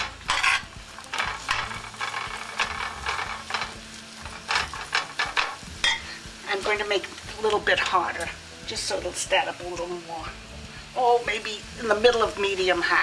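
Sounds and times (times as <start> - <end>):
spoon scraping onions and peppers in a hot pan: 0.0 - 6.4
soft sizzle of onions and peppers in a hot pan: 0.0 - 13.0
speech: 6.6 - 13.0.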